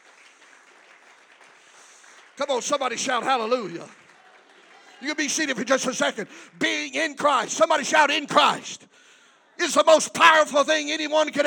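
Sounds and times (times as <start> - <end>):
large crowd clapping: 0.0 - 7.8
speech: 2.4 - 4.0, 5.0 - 9.0, 9.6 - 11.4.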